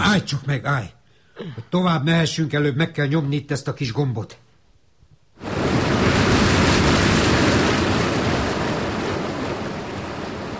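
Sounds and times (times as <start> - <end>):
speech: 0.2 - 4.4
water rushing out of a pool: 5.4 - 10.5.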